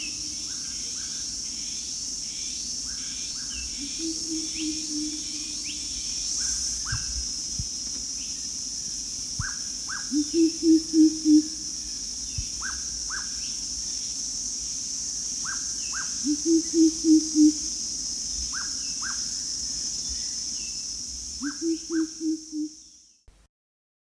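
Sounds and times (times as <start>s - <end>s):
insects droning at high pitch: 0.0s - 23.3s
greater coucal hooting: 3.8s - 5.6s, 10.1s - 11.6s, 16.2s - 17.7s, 21.4s - 22.7s.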